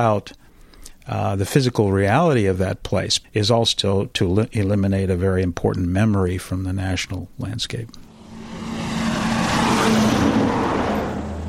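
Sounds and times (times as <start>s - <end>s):
speech: 0.0s - 0.4s, 1.1s - 8.0s
broad rushing road noise: 8.0s - 11.4s
heavy coal truck engine roaring past: 8.0s - 11.4s.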